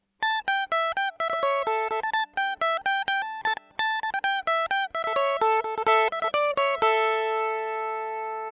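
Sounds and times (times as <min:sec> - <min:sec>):
electric mandolin recorded direct input: 0:00.2 - 0:08.5.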